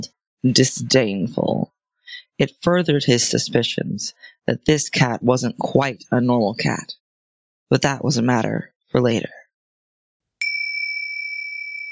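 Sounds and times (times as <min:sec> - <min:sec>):
speech: 0:00.0 - 0:07.0, 0:07.7 - 0:09.4
magic door chime ringing: 0:10.4 - 0:11.9.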